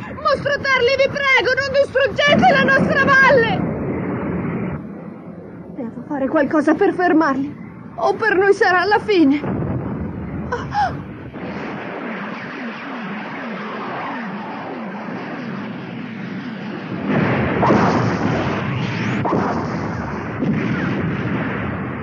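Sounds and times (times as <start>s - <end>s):
gunfire and artillery blasting at approaching monsters: 0.0s - 4.8s, 9.2s - 22.0s
speech: 0.4s - 3.8s, 5.9s - 9.6s, 10.5s - 11.0s.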